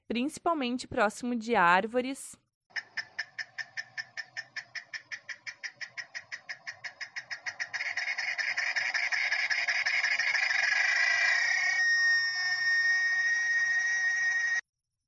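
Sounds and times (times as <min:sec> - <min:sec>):
speech: 0:00.1 - 0:02.4
cicada calling in summer: 0:02.8 - 0:14.6.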